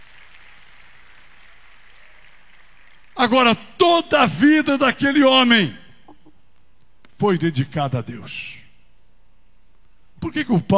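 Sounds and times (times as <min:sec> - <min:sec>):
audience at a religious gathering applauding: 0:00.0 - 0:03.3
speech: 0:03.2 - 0:05.8, 0:07.2 - 0:08.6, 0:10.2 - 0:10.7.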